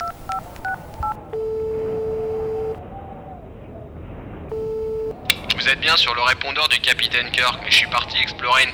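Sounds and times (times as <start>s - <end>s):
telephone keypad dialing tones: 0.0s - 2.8s, 4.5s - 5.4s
speech: 5.7s - 8.7s.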